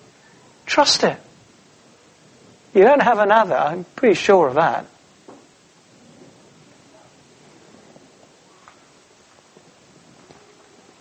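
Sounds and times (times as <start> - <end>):
steady rain hiss: 0.0 - 10.9
speech: 0.8 - 1.3, 2.8 - 4.9.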